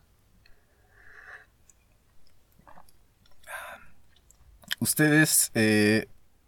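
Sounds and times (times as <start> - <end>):
person sipping a drink: 1.1 - 4.8
speech: 4.8 - 6.1.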